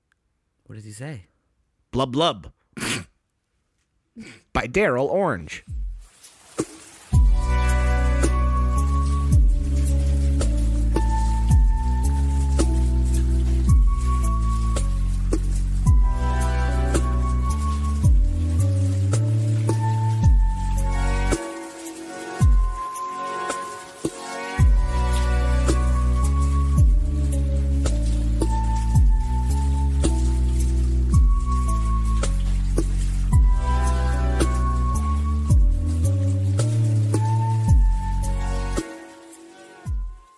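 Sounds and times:
speech: 0.7s - 1.3s, 1.9s - 3.1s, 4.2s - 5.8s
soft watery dripping plinks: 5.7s - 40.3s
mellow lo-fi beat with warm sustained chords: 6.6s - 40.3s
stepping bassline: 7.2s - 21.4s, 24.6s - 38.8s.

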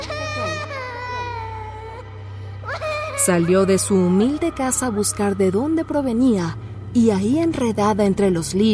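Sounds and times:
little girl crying in high wavering wails: 0.0s - 2.0s, 2.6s - 3.3s
steady low hum: 0.0s - 8.7s
speech: 3.2s - 8.7s.

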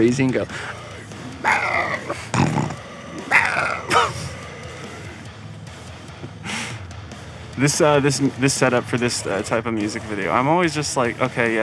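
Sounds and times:
speech: 0.0s - 0.8s, 7.6s - 11.6s
dog growling low: 0.5s - 5.4s.

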